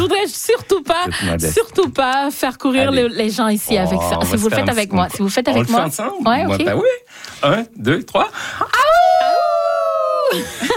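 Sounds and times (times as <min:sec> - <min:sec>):
speech: 0:00.1 - 0:09.0, 0:10.3 - 0:10.7
people chattering: 0:02.8 - 0:06.9
crowd at a festival imitating a wolf howl: 0:08.8 - 0:10.4
scattered laughter: 0:10.3 - 0:10.7.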